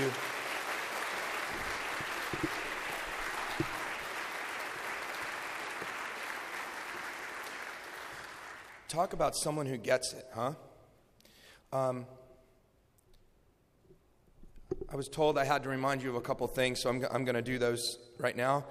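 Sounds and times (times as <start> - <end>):
audience applause: 0.0 - 9.0
speech: 9.0 - 10.7, 11.7 - 12.2, 14.9 - 18.7.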